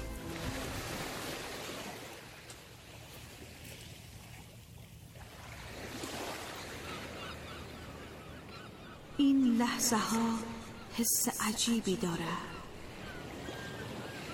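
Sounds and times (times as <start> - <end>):
Pacific Ocean waves slapping around a boat: 0.2 - 7.6
speech: 9.8 - 12.5.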